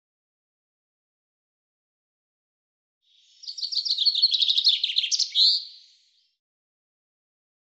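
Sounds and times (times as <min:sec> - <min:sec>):
common chaffinch singing: 0:03.2 - 0:06.1.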